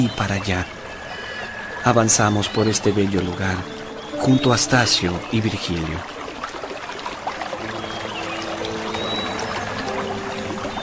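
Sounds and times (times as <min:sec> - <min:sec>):
speech: 0:00.0 - 0:00.8, 0:01.8 - 0:06.2
gentle stream flowing: 0:00.0 - 0:10.8.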